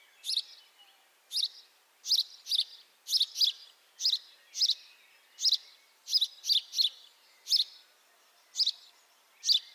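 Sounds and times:
house sparrow Passer domesticus chirping: 0.0s - 9.7s.

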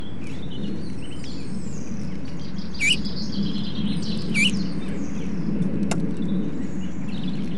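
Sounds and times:
steady low rumbling background noise: 0.0s - 7.5s
Eurasian bullfinch Pyrrhula pyrrhula giving soft short piping whistles: 2.8s - 3.1s, 4.3s - 4.6s.

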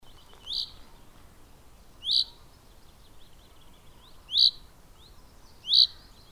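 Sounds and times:
common chaffinch Fringilla coelebs calling: 0.1s - 0.9s, 2.0s - 2.5s, 3.2s - 6.3s.

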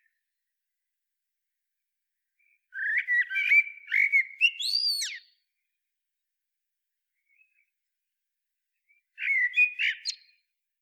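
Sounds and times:
Common blackbird singing a mellow whistled phrase: 2.8s - 5.3s, 9.2s - 10.4s.

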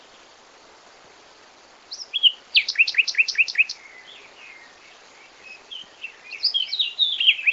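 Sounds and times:
common nightingale song: 1.9s - 7.5s.

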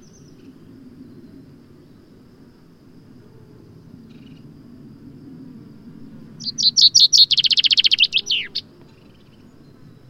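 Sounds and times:
common chaffinch song, Fringilla coelebs: 0.0s - 2.1s, 6.3s - 10.0s.

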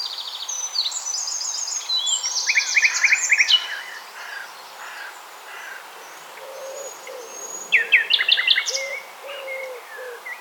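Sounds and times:
common nightingale song, Luscinia megarhynchos: 0.0s - 5.3s, 6.0s - 10.3s.

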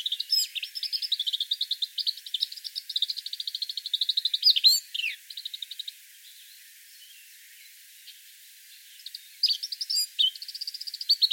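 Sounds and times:
Eurasian blackcap Sylvia atricapilla twittering: 0.0s - 5.9s, 9.0s - 11.3s.

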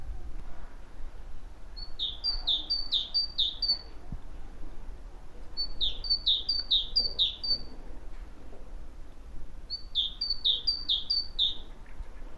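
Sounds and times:
great tit Parus major singing two-note phrases: 1.8s - 3.9s, 5.6s - 7.7s, 9.7s - 11.7s.

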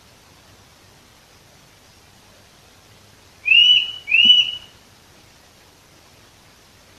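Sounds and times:
Eurasian nuthatch Sitta europaea whistling: 3.4s - 4.8s.

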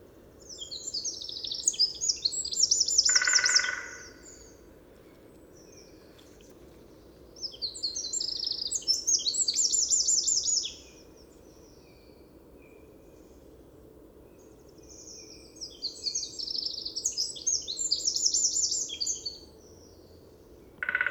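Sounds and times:
Eurasian wren Troglodytes troglodytes trilling song: 0.5s - 4.6s, 7.4s - 11.8s, 14.8s - 19.5s, 20.8s - 21.0s.

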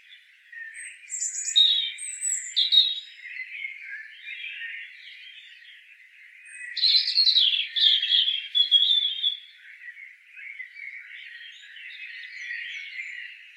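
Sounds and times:
European robin Erithacus rubecula singing: 0.0s - 13.5s.

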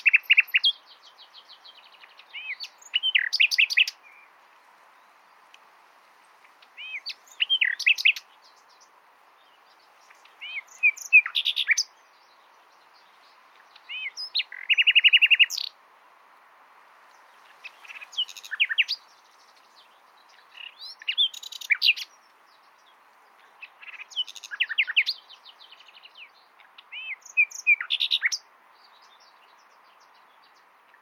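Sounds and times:
common nightingale Luscinia megarhynchos song with chirps, whistles and rattle: 0.0s - 30.9s.

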